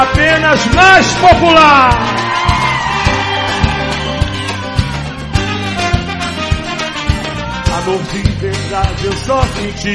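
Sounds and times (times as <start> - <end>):
loud live music: 0.0 - 9.9
speech: 0.4 - 2.4, 7.9 - 9.9
audience shouting and whooping: 1.0 - 6.4, 7.1 - 8.1.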